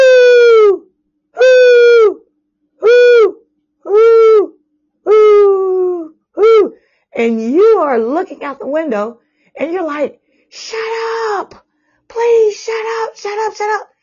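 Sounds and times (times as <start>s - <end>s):
owl hooting: 0.0s - 6.9s
speech: 7.2s - 13.9s.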